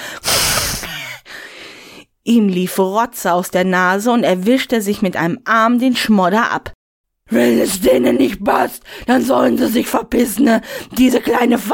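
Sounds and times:
person imitating an ogre's angry snort: 0:00.0 - 0:01.2
huffing exhale: 0:00.0 - 0:01.9
speech: 0:02.3 - 0:11.7.

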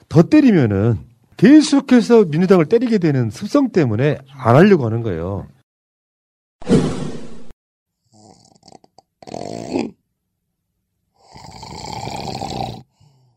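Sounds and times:
speech: 0:00.2 - 0:05.6
harsh rattling open-mouthed snoring: 0:08.0 - 0:10.0, 0:11.1 - 0:13.3.

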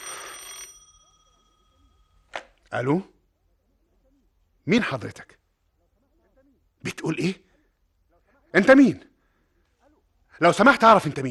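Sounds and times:
telephone bell ringing: 0:00.0 - 0:02.3
speech: 0:02.7 - 0:03.2, 0:04.7 - 0:05.4, 0:06.8 - 0:07.5, 0:08.5 - 0:09.1, 0:10.4 - 0:11.2.

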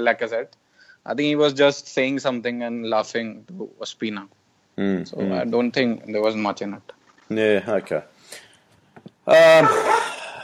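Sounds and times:
speech: 0:00.0 - 0:08.4, 0:09.3 - 0:10.1
puppy barking: 0:09.6 - 0:10.2.

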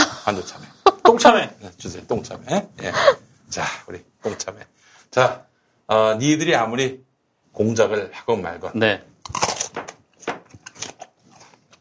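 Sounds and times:
speech: 0:00.3 - 0:07.0, 0:07.6 - 0:09.5
biting and chewing crunchy Korean melon: 0:09.2 - 0:11.7.

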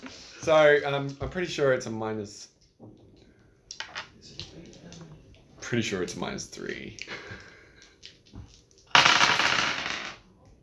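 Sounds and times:
speech: 0:00.0 - 0:03.0, 0:05.7 - 0:07.4
dice thrown and rolling across a hard surface: 0:03.7 - 0:05.0, 0:07.8 - 0:10.3.

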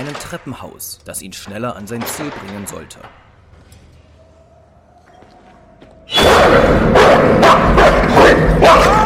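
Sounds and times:
speech: 0:00.0 - 0:03.3
dog barking: 0:06.3 - 0:08.9.

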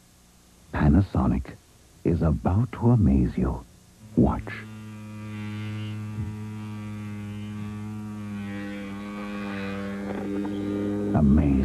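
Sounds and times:
speech: 0:00.9 - 0:04.7, 0:11.2 - 0:11.6
wet dry rechargeable electric shaver buzzing: 0:04.0 - 0:11.6.

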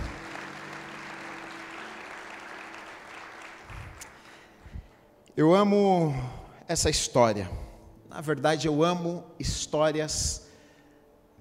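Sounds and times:
congregation applauding: 0:00.0 - 0:05.0
speech: 0:05.4 - 0:10.4.

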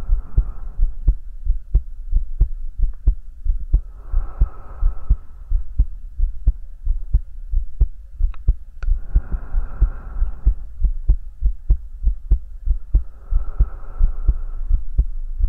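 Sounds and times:
breathing: 0:00.0 - 0:01.2, 0:03.8 - 0:05.8, 0:08.9 - 0:10.9, 0:12.8 - 0:15.2
heartbeat: 0:00.0 - 0:15.4.

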